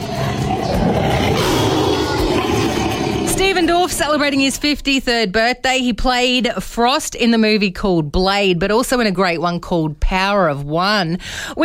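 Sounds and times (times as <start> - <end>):
tiger roaring: 0.0 - 3.8
speech: 3.9 - 11.6.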